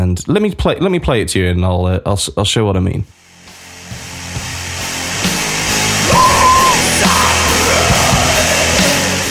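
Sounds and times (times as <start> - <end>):
speech: 0.2 - 3.2
loud dense heavy metal music with distorted guitars and drums: 3.4 - 9.2
harsh strained inhale scream: 6.0 - 9.0.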